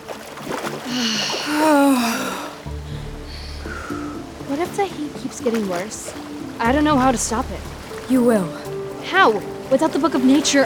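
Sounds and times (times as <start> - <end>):
person diving and splashing into water: 0.0 - 2.7
churning water: 0.0 - 10.6
person gasping: 0.9 - 4.0
speech: 5.3 - 10.6.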